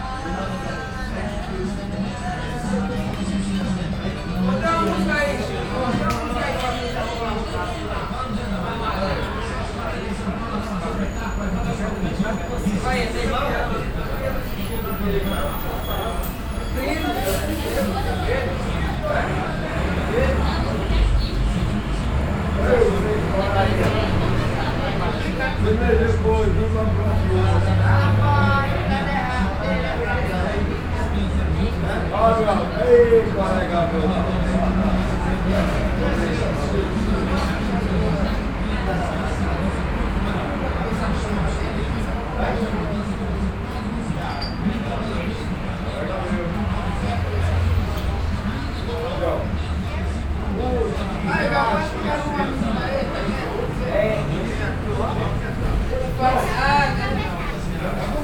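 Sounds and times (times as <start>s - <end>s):
street ambience in Brazil: 0.0s - 58.2s.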